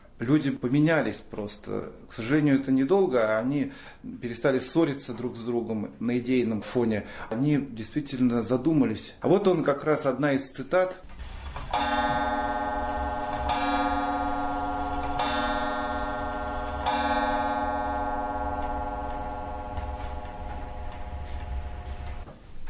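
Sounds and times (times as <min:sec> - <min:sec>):
speech: 0:00.2 - 0:12.6
clock chiming: 0:11.7 - 0:22.3.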